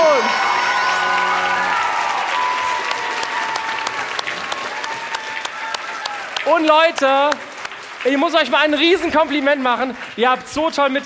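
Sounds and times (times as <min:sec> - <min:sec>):
large audience clapping in dense sustained applause: 0:00.0 - 0:11.0
sharper claps standing out from the applause: 0:02.1 - 0:11.0
speech: 0:06.6 - 0:11.0.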